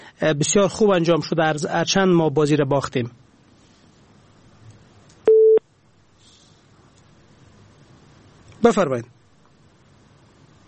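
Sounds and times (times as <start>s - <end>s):
faint hiss: 0.0s - 10.6s
speech: 0.2s - 3.2s, 8.6s - 9.2s
telephone busy tone after caller disconnected: 5.3s - 5.6s.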